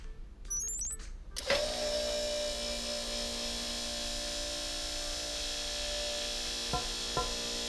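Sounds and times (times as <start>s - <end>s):
short chirping beep: 0.5s - 1.0s
motorized whir of metal storm shields closing: 0.6s - 7.6s
sharp mechanical clunks of metal storm shields: 6.7s - 7.6s.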